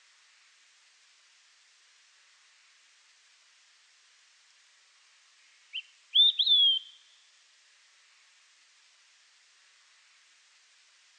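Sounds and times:
olive-sided flycatcher whistling its three-note song: 6.2 - 7.0.

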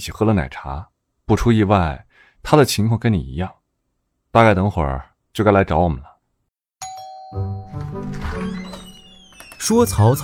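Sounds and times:
speech: 0.0 - 3.6, 4.3 - 6.1, 7.3 - 8.7, 9.6 - 10.2
doorbell ringing inside a house with a two-note ding-dong chime: 6.8 - 8.1.

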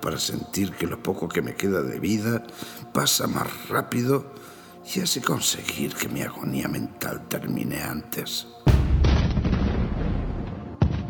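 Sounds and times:
speech: 0.0 - 8.8
loud explosion: 8.7 - 11.0
second sharp blast: 8.7 - 11.0.

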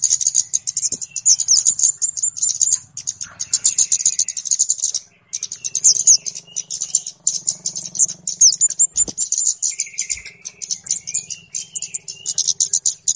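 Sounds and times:
flowerpecker calls: 0.0 - 13.1.

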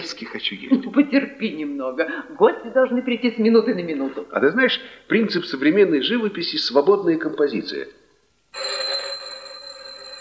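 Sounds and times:
speech: 0.1 - 8.7
telephone ringing in a steady high electronic tone: 8.5 - 10.1.

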